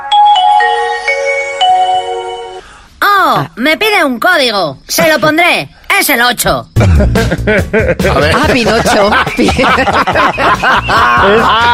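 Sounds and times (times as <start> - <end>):
mobile phone switching on with electronic startup melody: 0.0 - 2.7
speech: 3.3 - 11.7
laughter: 6.8 - 11.7.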